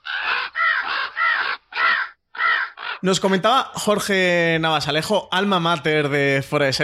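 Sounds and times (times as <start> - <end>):
crows cawing: 0.0 - 3.1
speech: 3.0 - 6.8.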